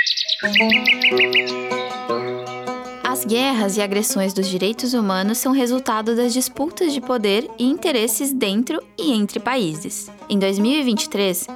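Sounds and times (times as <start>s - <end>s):
birds singing with quick repeated chirps and high tweeting notes: 0.0s - 2.7s
speech: 0.4s - 2.2s, 3.2s - 11.5s
steady tonal musical background: 0.4s - 11.5s.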